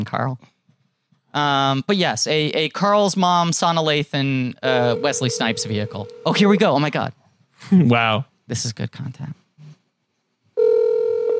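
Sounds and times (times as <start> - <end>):
speech: 0.0 - 0.6, 1.3 - 9.4
telephone ringback tone on an outgoing call: 4.7 - 6.6, 10.6 - 11.3.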